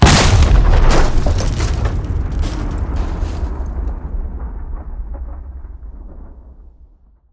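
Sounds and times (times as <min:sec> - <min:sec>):
close nuke explosion: 0:00.0 - 0:07.3.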